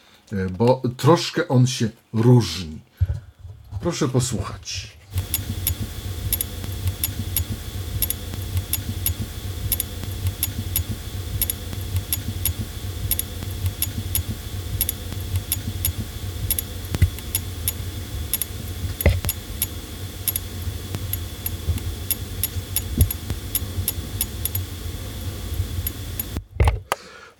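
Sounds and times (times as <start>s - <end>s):
speech: 0.3s - 5.4s
battery charger ticking while charging: 5.1s - 26.4s
constant low electrical hum: 5.1s - 26.7s.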